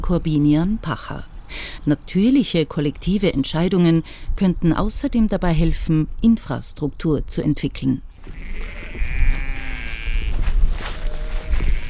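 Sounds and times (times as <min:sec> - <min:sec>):
speech: 0:00.1 - 0:09.1
grazing sheep bleating behind a fence on Tempelhofer Feld: 0:08.2 - 0:11.8.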